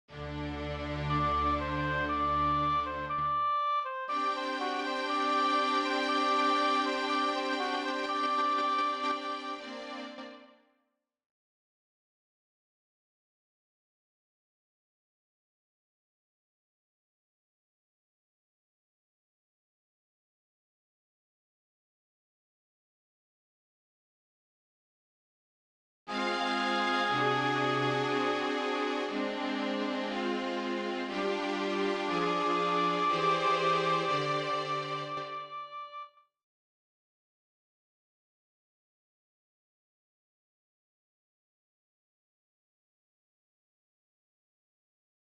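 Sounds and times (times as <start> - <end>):
oboe: 0.6 - 10.2, 26.1 - 36.2.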